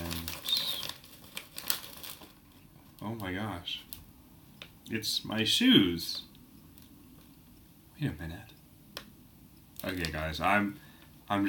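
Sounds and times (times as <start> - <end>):
packing paper rustling and crinkling in a box: 0.0 - 4.0, 9.8 - 10.3
speech: 3.0 - 3.9, 4.9 - 6.3, 8.0 - 8.6, 9.8 - 11.4.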